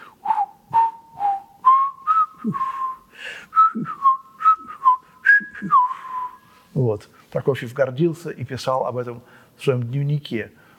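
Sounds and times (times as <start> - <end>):
person whistling a lively marching tune: 0.0 - 6.6
speech: 2.4 - 2.7, 6.8 - 10.6.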